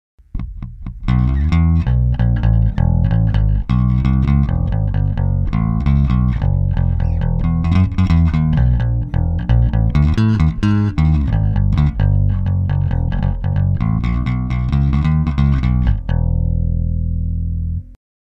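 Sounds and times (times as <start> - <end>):
active bass guitar with Bartolini preamp played with a pick: 0.2 - 18.0.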